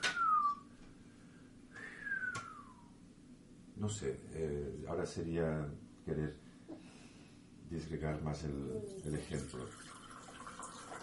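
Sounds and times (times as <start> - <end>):
person whistling long gliding notes sliding downward in pitch: 0.0 - 0.7, 1.8 - 2.9
speech: 3.8 - 6.4, 7.7 - 10.0.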